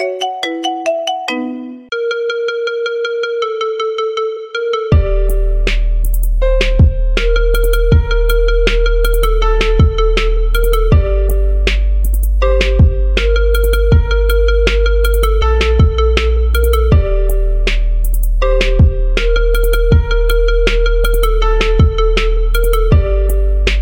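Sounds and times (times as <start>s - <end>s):
marimba remix: 0.0s - 23.7s.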